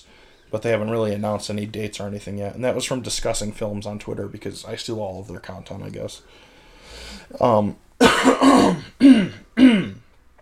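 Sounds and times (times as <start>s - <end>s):
speech: 0.0s - 9.8s
loud throaty coughs: 8.0s - 10.1s.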